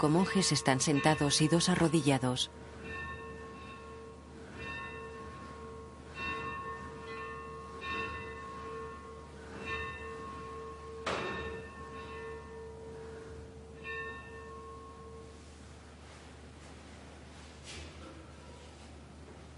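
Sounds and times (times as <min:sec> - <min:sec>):
speech: 0:00.0 - 0:02.7
church bell in a chapel tolling, rung by a man pulling a rope: 0:00.0 - 0:15.6.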